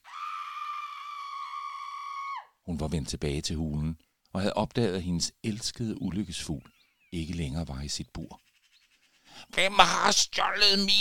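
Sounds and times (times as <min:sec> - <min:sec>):
witch's shrill scream among the trees of a deep forest: 0:00.0 - 0:02.6
speech: 0:02.6 - 0:08.4, 0:09.3 - 0:11.0.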